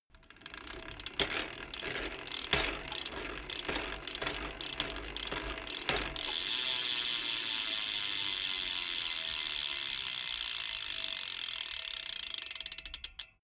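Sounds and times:
BMX bike pedaling, accelerating and coasting: 0.0 - 13.4.

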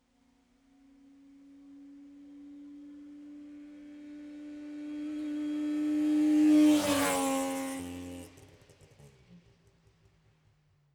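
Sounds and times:
Saab 92 car passing by left to right: 4.4 - 9.1.

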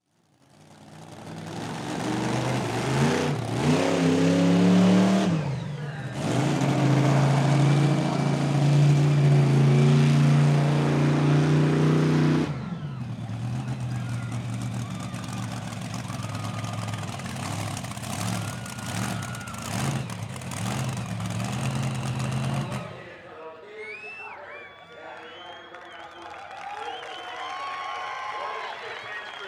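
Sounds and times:
monster truck race: 0.1 - 29.4.

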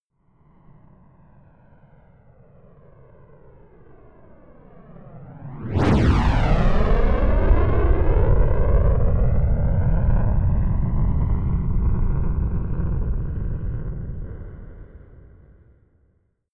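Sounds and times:
space shuttle rocket flyby: 5.2 - 14.2.

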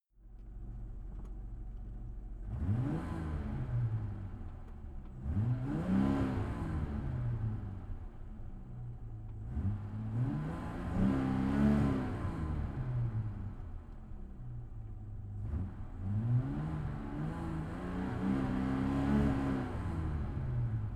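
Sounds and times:
Jaguar E-Type car engine revving heard from the interior: 2.4 - 4.4, 5.2 - 7.8, 9.4 - 13.7, 15.3 - 20.9.

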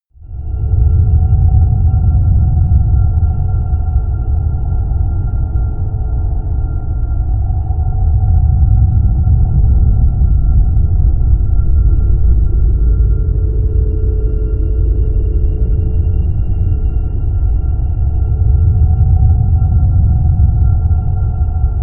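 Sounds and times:
ghostly drone: 0.2 - 21.8.

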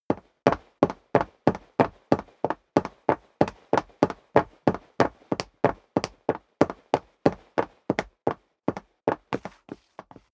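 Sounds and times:
sneaker footsteps running on wood parquet: 0.1 - 10.3.

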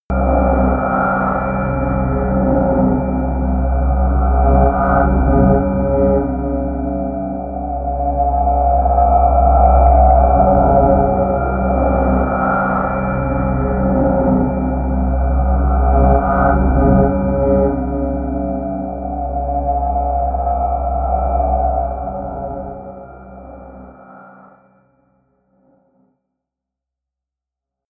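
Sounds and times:
sonar drone: 0.1 - 25.8.

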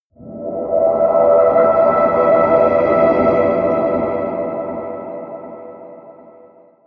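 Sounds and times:
air wind choir drones: 0.2 - 6.7.

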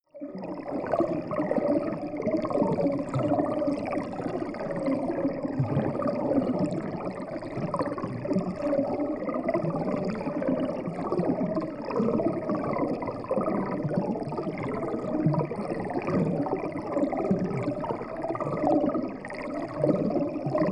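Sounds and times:
water bubbling heavily: 0.3 - 20.7.

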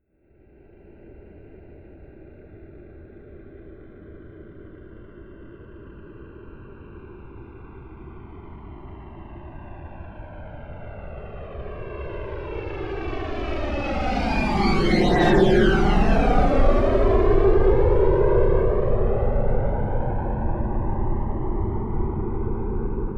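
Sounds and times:
C-17 Globemaster military jet flyby: 8.9 - 23.1.

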